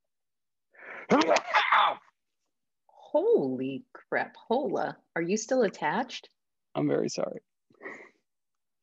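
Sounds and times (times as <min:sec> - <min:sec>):
person sneezing: 0:01.0 - 0:02.0
speech: 0:01.1 - 0:01.4, 0:03.1 - 0:08.0.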